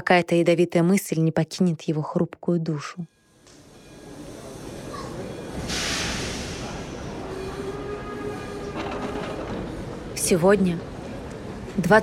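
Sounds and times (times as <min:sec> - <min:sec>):
speech: 0:00.0 - 0:03.2, 0:10.3 - 0:10.9, 0:11.8 - 0:12.0
train wheels rumbling and rattling on track: 0:03.8 - 0:12.0.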